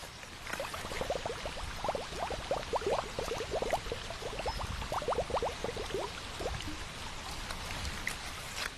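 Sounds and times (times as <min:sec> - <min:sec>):
running river water: 0:00.0 - 0:08.7
container being filled with a river water sample: 0:00.4 - 0:07.1.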